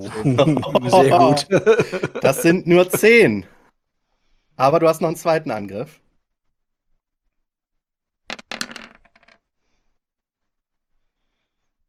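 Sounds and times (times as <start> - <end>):
laughter: 0.0 - 3.3
speech: 0.0 - 3.6, 4.6 - 6.0
dice tumbling across a tabletop during a tabletop role-playing game: 8.3 - 9.5.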